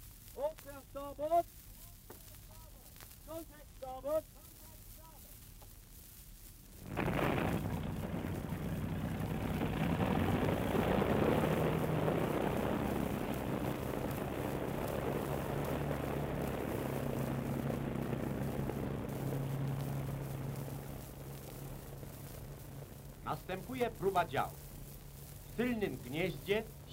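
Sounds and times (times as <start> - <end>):
speech: 0.9 - 1.6, 3.4 - 4.4, 23.3 - 24.6, 25.6 - 26.9
aircraft engines being test-run: 6.8 - 26.9
rumbling propeller tones: 6.8 - 26.9.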